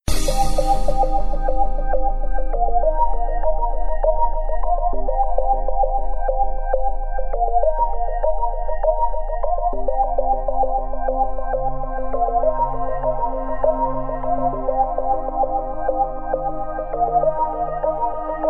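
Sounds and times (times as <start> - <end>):
trance beat: 0.0 - 18.4.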